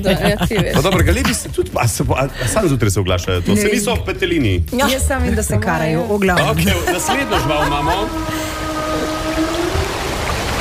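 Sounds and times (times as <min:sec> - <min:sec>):
laughter: 0:00.0 - 0:04.2, 0:06.4 - 0:09.0
speech: 0:00.0 - 0:08.6
whale call with drawn-out tonal moans: 0:06.5 - 0:10.6.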